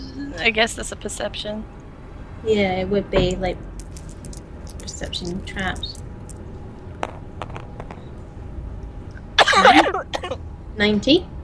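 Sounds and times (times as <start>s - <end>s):
speech: 0.4s - 1.8s, 2.4s - 3.7s, 5.0s - 6.0s, 10.8s - 11.3s
person coughing: 9.4s - 10.4s.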